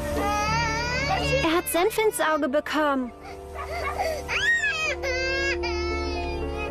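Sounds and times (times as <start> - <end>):
one-year-old baby crying: 0.1 - 2.3, 3.2 - 6.6
speech: 1.7 - 3.8.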